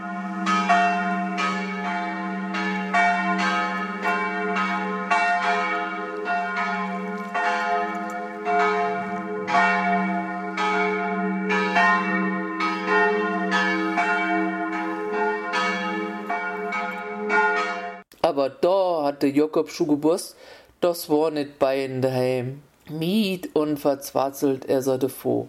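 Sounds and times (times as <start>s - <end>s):
church bells pealing on a Sunday: 0.0s - 18.1s
speech: 19.2s - 25.4s.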